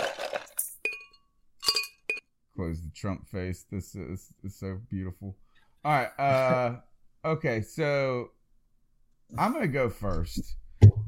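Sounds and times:
ice cubes clinking and rattling into a mug: 0:00.0 - 0:02.1
speech: 0:02.6 - 0:08.4, 0:09.3 - 0:10.6.

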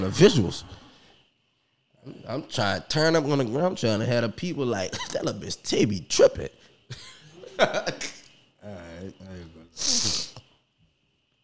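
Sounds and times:
speech: 0:00.0 - 0:00.8, 0:02.0 - 0:10.3
laughter: 0:06.9 - 0:08.2
person with a bug sniffing through the nose: 0:09.8 - 0:10.4.

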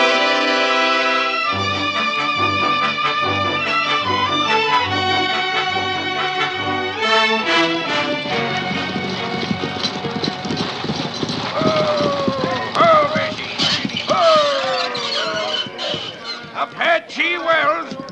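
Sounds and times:
stagecoach horses trotting with hooves clip-clopping: 0:00.0 - 0:18.1
rumbling movement of a stagecoach: 0:07.4 - 0:17.1
raised voices calling out: 0:11.4 - 0:18.1.

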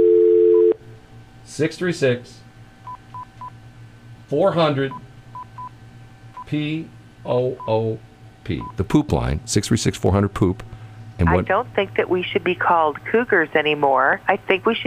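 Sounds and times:
loud steady telephone dial tone: 0:00.0 - 0:00.8
speech: 0:01.6 - 0:02.4, 0:04.3 - 0:05.0, 0:06.5 - 0:14.8.

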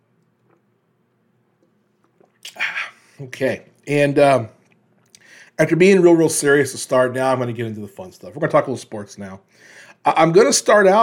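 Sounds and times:
low hum: 0:00.0 - 0:11.0
sipping water: 0:00.1 - 0:03.8, 0:04.5 - 0:05.6
short louder slurping gulp: 0:01.6 - 0:03.1
faint clicks and small mouth noises: 0:02.1 - 0:03.3
speech: 0:03.2 - 0:04.6, 0:05.6 - 0:11.0.

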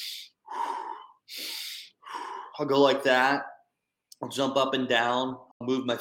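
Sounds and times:
forceful rushing breaths as a breathing exercise: 0:00.0 - 0:02.7
speech: 0:02.6 - 0:03.5, 0:04.2 - 0:05.9.

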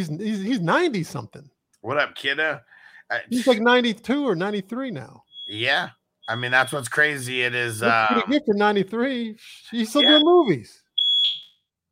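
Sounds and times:
speech: 0:00.0 - 0:11.4
smoke alarm beep set off by smoke from cooking food: 0:05.2 - 0:06.9, 0:09.8 - 0:11.6.

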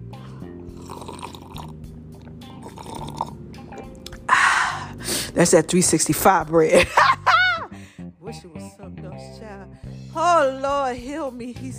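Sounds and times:
person slurping coconut water: 0:00.6 - 0:04.3
mouth and swallowing noises: 0:00.7 - 0:04.3
speech: 0:05.4 - 0:07.2, 0:10.4 - 0:11.7.

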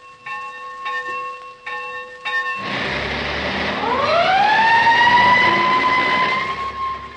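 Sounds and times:
school bell ringing: 0:00.0 - 0:03.8
fire engine siren wailing: 0:02.6 - 0:07.1.

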